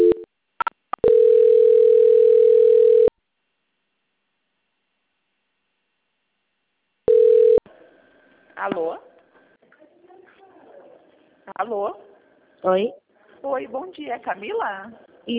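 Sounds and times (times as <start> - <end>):
steady mid-pitched telephone line tone during a call transfer: 0.0 - 0.3, 1.0 - 3.1, 7.1 - 7.6
speech: 11.7 - 15.3.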